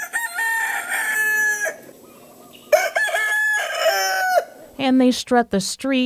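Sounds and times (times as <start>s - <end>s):
feral rooster crowing in the Keys: 0.0s - 4.8s
speech: 4.8s - 6.0s.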